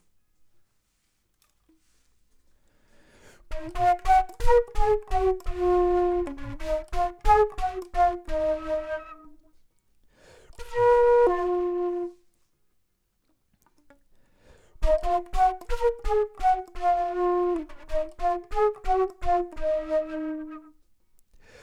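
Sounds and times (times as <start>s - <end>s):
flute: 3.5s - 9.6s, 10.6s - 12.5s, 14.8s - 20.9s.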